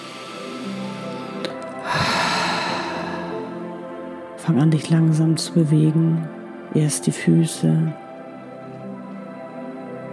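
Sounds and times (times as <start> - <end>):
slow deep breath during a guided relaxation: 0.0 - 3.7
speech: 4.5 - 8.0.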